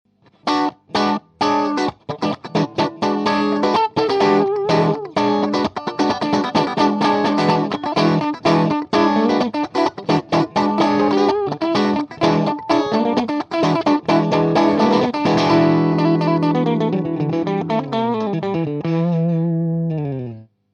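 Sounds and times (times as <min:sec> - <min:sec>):
electric guitar playing funk: 0:00.3 - 0:20.5.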